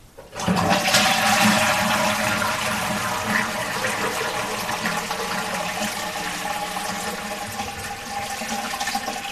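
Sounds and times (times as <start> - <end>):
wet toilet flush: 0.2 - 9.3.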